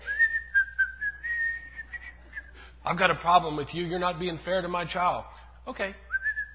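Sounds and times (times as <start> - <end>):
person whistling a simple tune alone: 0.0 - 2.6, 6.1 - 6.5
speech: 2.9 - 6.0.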